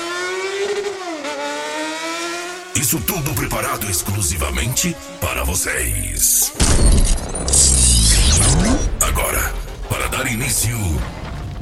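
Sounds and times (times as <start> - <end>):
high-displacement motorcycle engines revving: 0.0 - 6.6
speech: 2.8 - 11.2.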